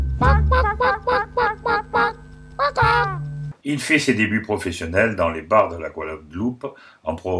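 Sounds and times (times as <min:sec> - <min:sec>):
chicken clucking: 0:00.3 - 0:03.2
speech: 0:03.6 - 0:07.3.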